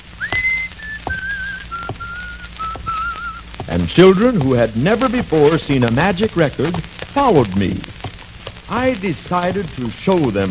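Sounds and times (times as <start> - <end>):
whistled melody: 0.2 - 4.4
soft footsteps or thumps: 0.2 - 9.0
speech: 3.8 - 7.9, 8.7 - 10.5.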